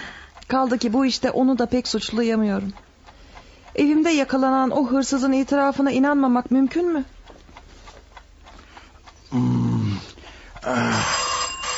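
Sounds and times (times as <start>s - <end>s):
speech: 0.5s - 2.9s, 3.8s - 7.2s, 9.3s - 9.6s, 10.6s - 11.2s
electric doorbell buzzing: 10.8s - 11.7s.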